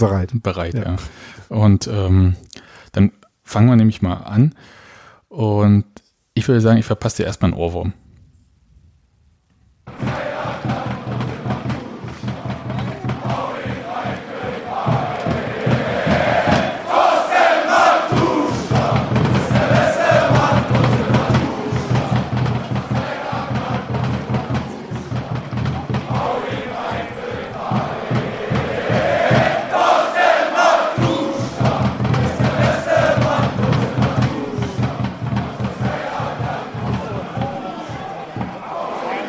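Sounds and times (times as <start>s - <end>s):
speech: 0.0s - 8.0s
large crowd of football fans chanting a song in unison: 9.9s - 39.2s.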